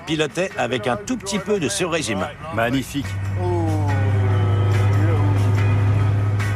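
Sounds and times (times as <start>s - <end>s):
speech: 0.1s - 3.5s
1960s GT6 sports car 2-litre six-cylinder engine droning at cruising speed: 3.1s - 6.5s.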